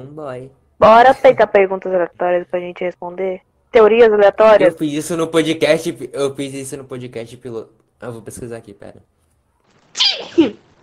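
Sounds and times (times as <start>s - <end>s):
speech: 0.0s - 9.2s, 10.0s - 10.7s
sneeze: 10.0s - 10.6s.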